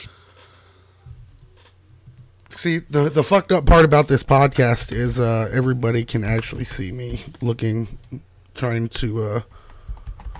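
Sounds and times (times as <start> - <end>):
speech: 2.6 - 9.6
typing on a computer keyboard: 9.7 - 10.3.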